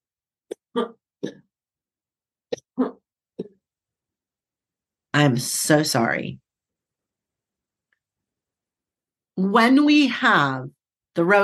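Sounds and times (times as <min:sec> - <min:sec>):
person coughing: 0:00.5 - 0:01.5
speech: 0:00.8 - 0:01.4, 0:05.2 - 0:06.4, 0:09.4 - 0:11.4.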